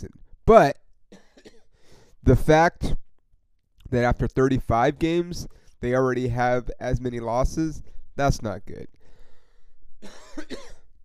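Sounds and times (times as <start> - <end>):
speech: 0.0 - 0.8, 2.2 - 3.0, 3.9 - 9.0, 10.0 - 10.7
harsh raspy coughs: 1.1 - 2.2, 10.0 - 11.0.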